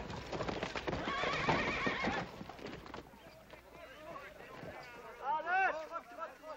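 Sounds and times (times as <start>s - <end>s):
horse hooves clip-clopping: 0.0s - 6.5s
horse whinnying: 0.9s - 2.4s.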